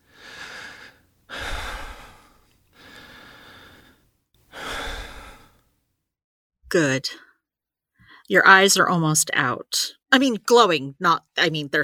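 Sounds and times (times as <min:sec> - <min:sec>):
slow deep relaxation breathing close to the mic: 0:00.0 - 0:05.8
speech: 0:06.7 - 0:07.3, 0:08.3 - 0:11.8.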